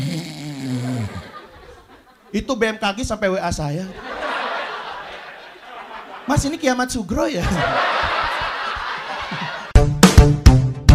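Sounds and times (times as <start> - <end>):
person imitating very loud snoring: 0.0 - 1.3
laughter: 0.6 - 2.4, 3.8 - 9.8
speech: 2.3 - 4.1, 6.3 - 8.0.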